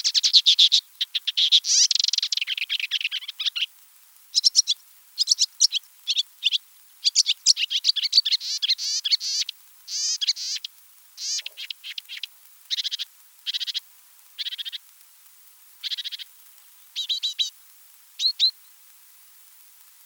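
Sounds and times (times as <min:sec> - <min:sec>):
Marsh Warbler singing in a marsh in France: 0:00.0 - 0:03.7, 0:04.3 - 0:13.8, 0:15.8 - 0:16.3, 0:17.0 - 0:17.5, 0:18.2 - 0:18.6.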